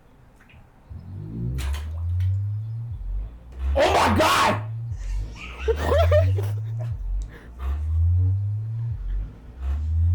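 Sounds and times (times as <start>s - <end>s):
speaker vibrating and resonating against a metal tub: 0.8s - 10.1s
speech: 3.8s - 4.6s, 5.7s - 6.5s
people laughing: 5.0s - 7.8s.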